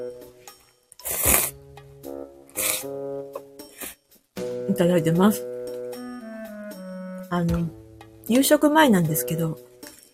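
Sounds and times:
soft music: 0.0s - 10.1s
person slurping ramen noodles: 1.0s - 1.6s, 2.5s - 3.0s
speech: 4.7s - 5.5s, 7.4s - 9.7s.

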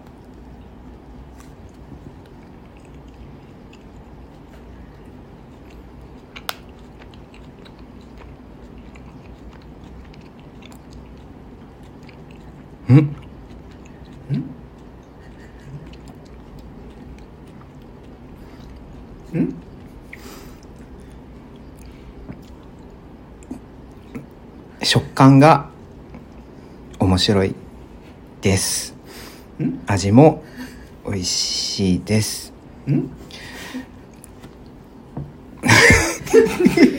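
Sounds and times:
chewing gummy candy: 0.0s - 24.6s
speech: 12.9s - 13.2s, 24.9s - 25.7s, 27.2s - 27.6s, 28.4s - 28.9s, 29.6s - 30.5s, 31.1s - 33.2s
laughter: 35.6s - 36.9s.

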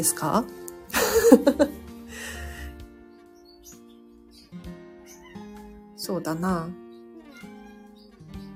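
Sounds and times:
speech: 0.0s - 2.4s, 6.1s - 6.8s
laughter: 0.9s - 1.8s
cat meowing softly: 5.0s - 8.5s.

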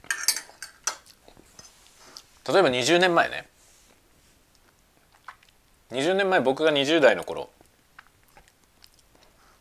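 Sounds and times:
metal cutlery clinking and scraping against dishes while eating lunch: 0.0s - 1.8s
speech: 2.5s - 3.5s, 5.9s - 7.6s.

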